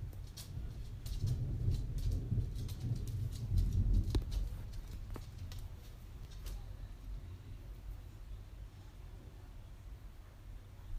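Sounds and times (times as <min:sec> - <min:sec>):
low rumble of thunder: 0:00.0 - 0:05.6.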